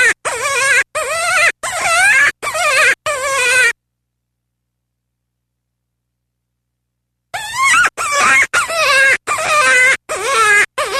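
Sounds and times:
cottontail rabbit crying: 0.0 - 3.8, 7.4 - 10.9.

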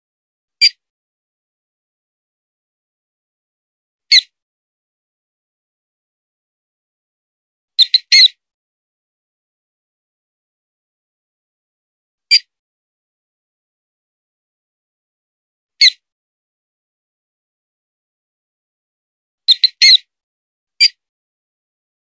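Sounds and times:
mouse distress calls: 7.8 - 8.3, 19.5 - 20.0.

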